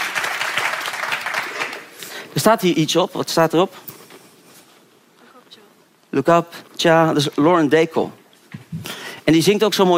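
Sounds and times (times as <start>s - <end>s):
crowd applauding: 0.0s - 2.0s
speech: 2.4s - 3.9s, 6.1s - 9.9s.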